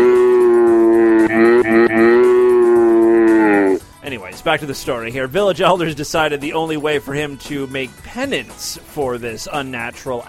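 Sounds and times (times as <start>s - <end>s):
cow mooing in a played sound clip: 0.0s - 3.8s
speech: 4.4s - 10.2s.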